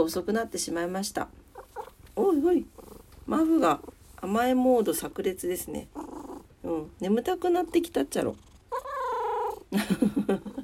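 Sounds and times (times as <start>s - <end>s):
speech: 0.0s - 6.0s, 6.6s - 8.5s, 9.7s - 10.6s
sleepy cat meowing, mewing and trilling: 8.7s - 9.6s.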